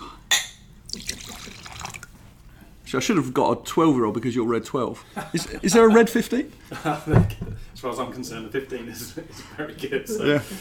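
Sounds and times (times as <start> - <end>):
glass clink: 0.3 - 1.2
whiskey pouring into a glass: 0.8 - 2.3
speech: 2.9 - 10.5.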